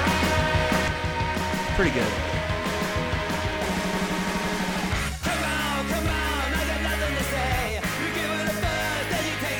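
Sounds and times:
lo-fi music track with raw screaming vocal and distorted instruments: 0:00.0 - 0:09.5
speech: 0:01.8 - 0:02.3.

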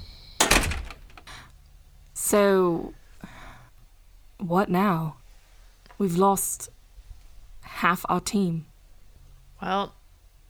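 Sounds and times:
hotel room door latch clunk: 0:00.0 - 0:01.4
speech: 0:02.3 - 0:03.0, 0:04.4 - 0:05.2, 0:06.0 - 0:06.8, 0:07.7 - 0:08.7, 0:09.6 - 0:10.0.

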